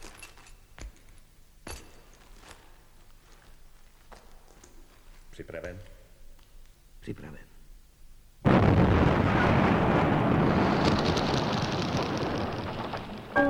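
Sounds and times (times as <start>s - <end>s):
speech: 5.4s - 6.0s, 7.1s - 7.5s
loud explosion trailing into a long roaring rumble: 8.4s - 13.4s.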